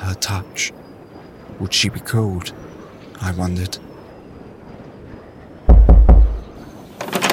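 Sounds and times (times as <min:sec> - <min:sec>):
speech: 0:00.1 - 0:00.8, 0:01.5 - 0:02.6, 0:03.2 - 0:03.9
firm knocks on a wooden door: 0:05.7 - 0:06.6.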